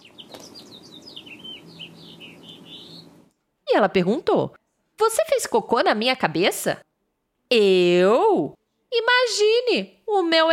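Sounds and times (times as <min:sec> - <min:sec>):
small bird chirping overhead: 0:00.0 - 0:03.3
faint low hum: 0:00.0 - 0:05.0
speech: 0:03.8 - 0:06.9, 0:07.5 - 0:10.5.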